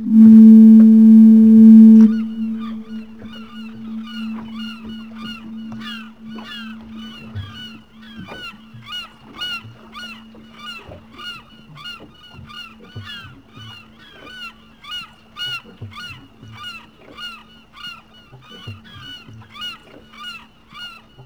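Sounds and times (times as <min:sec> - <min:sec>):
gulls calling: 0:00.0 - 0:08.1
foghorn: 0:00.0 - 0:11.0.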